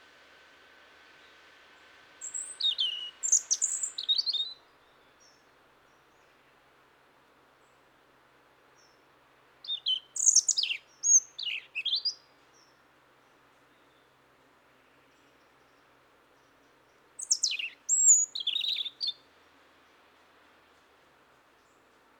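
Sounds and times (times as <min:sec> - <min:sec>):
European robin autumn song of high thin whistles and trills: 0:02.2 - 0:05.4, 0:09.6 - 0:12.2, 0:17.2 - 0:19.2.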